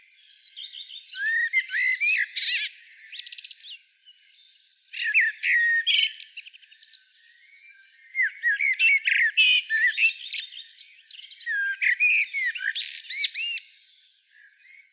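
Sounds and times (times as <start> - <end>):
Turdus merula common blackbird singing: 0.0 - 14.9.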